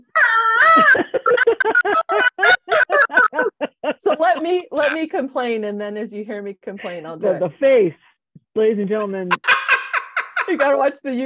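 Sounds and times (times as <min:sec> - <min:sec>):
human voice imitating a frantic rooster crowing: 0:00.0 - 0:01.0
laughter: 0:00.6 - 0:05.0, 0:09.2 - 0:10.7
speech: 0:00.8 - 0:01.2, 0:04.2 - 0:09.5, 0:10.5 - 0:11.2.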